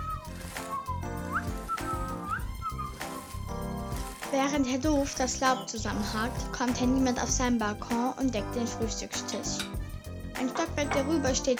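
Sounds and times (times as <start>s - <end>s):
person whistling a bright cheerful tune: 0.0s - 3.3s
dense busy steady sound: 0.0s - 11.5s
speech: 4.3s - 9.8s, 10.4s - 11.5s.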